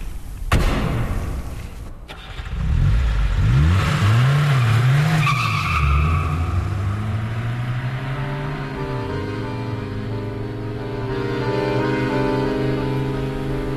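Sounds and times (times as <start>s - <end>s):
sharp thump: 0.5s - 2.1s
car engine revving up and accelerating: 2.1s - 13.7s.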